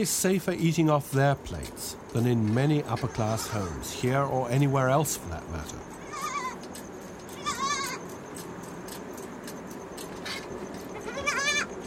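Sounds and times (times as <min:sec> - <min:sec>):
speech: 0:00.0 - 0:06.4
steady hum: 0:00.0 - 0:11.8
goat bleating: 0:06.0 - 0:06.6, 0:07.3 - 0:08.0, 0:10.9 - 0:11.7.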